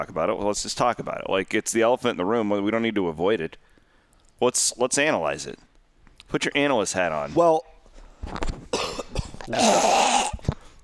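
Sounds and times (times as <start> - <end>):
speech: 0.0 - 3.7, 4.4 - 5.7, 6.3 - 8.5, 9.5 - 10.3
person coughing: 8.7 - 10.4.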